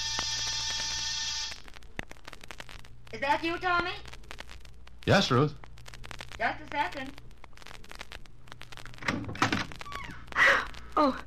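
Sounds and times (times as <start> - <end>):
harsh electric apartment door buzzer: 0.0 - 1.6
faint clicks: 1.6 - 11.2
speech: 3.1 - 4.1, 5.0 - 5.6, 6.4 - 7.2, 11.0 - 11.2.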